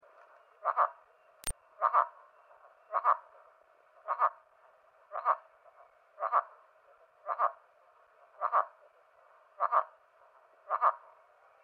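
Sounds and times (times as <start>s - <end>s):
Caudiverbera caudiverbera calling: 0.6s - 1.0s, 1.7s - 4.5s, 5.1s - 8.9s, 9.5s - 10.0s, 10.6s - 11.2s.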